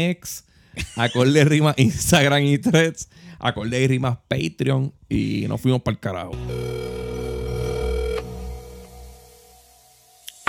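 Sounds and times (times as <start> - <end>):
speech: 0.0 - 6.8
telephone ringing on a call placed to one's own number: 6.4 - 8.8.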